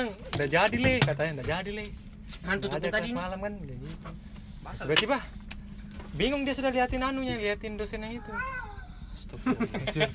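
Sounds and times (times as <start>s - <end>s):
speech: 0.0s - 5.4s, 6.2s - 8.6s, 9.2s - 10.1s
cat meowing: 8.2s - 9.1s
laughter: 9.3s - 10.1s.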